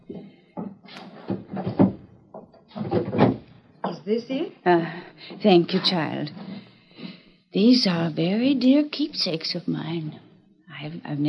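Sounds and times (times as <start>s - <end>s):
soft knocks: 0.0s - 4.2s
top drawer of a wooden chest sliding open and shut: 0.8s - 2.0s, 2.6s - 3.5s
speech: 4.1s - 6.4s, 7.6s - 10.2s, 10.8s - 11.2s.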